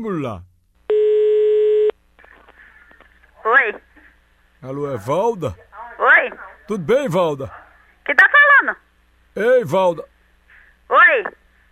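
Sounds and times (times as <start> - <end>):
speech: 0.0 - 0.5, 3.4 - 3.9, 4.6 - 8.8, 9.4 - 10.1, 10.9 - 11.7
telephone tone while placing a call: 0.9 - 1.9.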